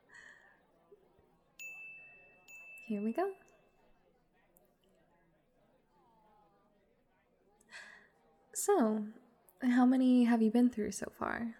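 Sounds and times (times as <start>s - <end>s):
faint murmur of room noise: 0.0s - 11.5s
bright bell ding: 1.6s - 3.6s
speech: 2.9s - 3.5s, 8.8s - 11.5s.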